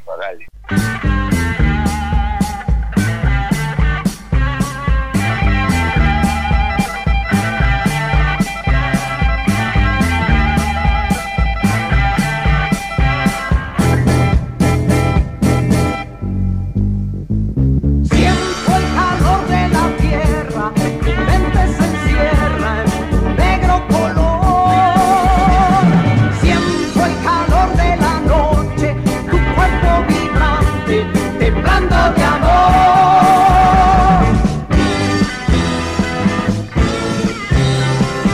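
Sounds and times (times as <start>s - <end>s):
dense guitar chords: 0.0s - 38.3s
speech: 0.3s - 1.0s
loud rock song: 0.6s - 16.7s, 18.0s - 38.3s.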